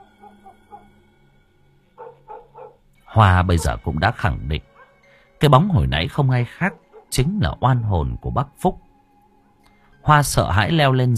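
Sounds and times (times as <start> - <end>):
dog barking below a house: 0.0 - 1.0, 2.0 - 2.8, 3.4 - 4.0, 4.7 - 5.0, 6.6 - 7.1
speech: 3.2 - 4.7, 5.4 - 8.8, 10.0 - 11.1.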